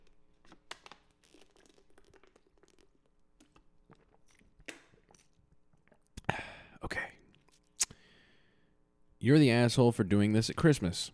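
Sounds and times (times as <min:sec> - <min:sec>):
plastic water bottle crinkling and crackling: 0:00.0 - 0:06.1
person sipping water: 0:01.2 - 0:08.3
speech: 0:09.2 - 0:11.1.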